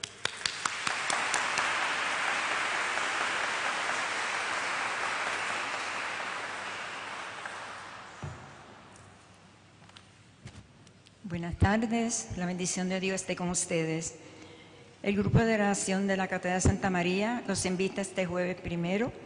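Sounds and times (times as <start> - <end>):
audience at a Mass applauding: 0.0 - 8.9
speech: 11.4 - 14.3, 15.0 - 19.2.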